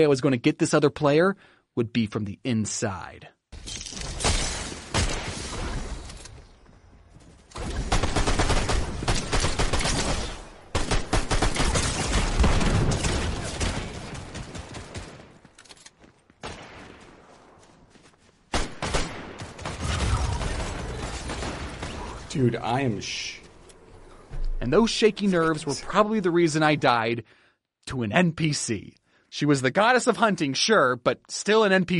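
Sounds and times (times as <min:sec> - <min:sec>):
speech: 0:00.0 - 0:03.9, 0:22.4 - 0:23.4, 0:24.6 - 0:31.9
video game gunfire in rapid bursts: 0:07.6 - 0:15.4, 0:18.5 - 0:22.3.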